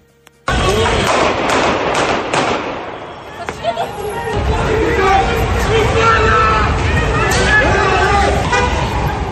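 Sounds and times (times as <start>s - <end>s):
traffic rumble: 0.0s - 9.3s
gunshots fired on a busy street: 0.5s - 3.1s
car horns: 2.8s - 9.3s
murmur of voices: 3.1s - 9.3s.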